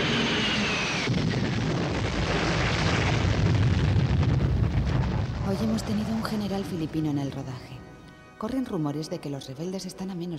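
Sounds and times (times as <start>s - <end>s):
burning fuel roaring and crackling: 0.0s - 6.5s
simulated napalm gasoline fireball explosion: 0.0s - 6.9s
speech: 5.6s - 7.8s, 8.4s - 10.3s.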